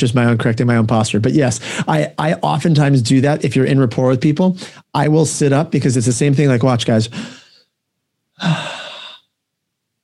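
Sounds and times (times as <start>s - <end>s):
speech: 0.0s - 7.4s, 8.4s - 8.8s
person taking a deep breath: 1.6s - 1.9s, 4.6s - 4.9s, 7.1s - 7.8s, 8.4s - 9.4s.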